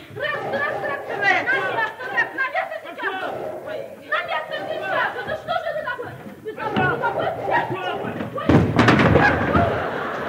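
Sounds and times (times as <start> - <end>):
laughter: 0.0 - 10.2
door bursting open: 6.7 - 10.0
person tripping over threshold and falling on floor with a thud: 8.4 - 9.8.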